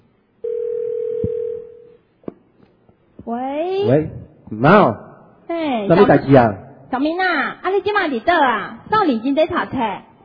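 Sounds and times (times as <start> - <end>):
telephone ringing for an incoming call: 0.4 - 2.0
speech: 3.3 - 5.0, 5.9 - 10.1.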